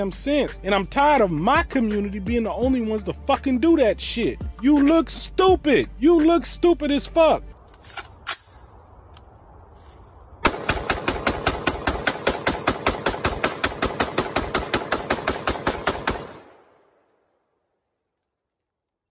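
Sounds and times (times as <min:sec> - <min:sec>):
speech: 0:00.0 - 0:08.1
gunshots from an AR pistol being fired: 0:10.4 - 0:16.8.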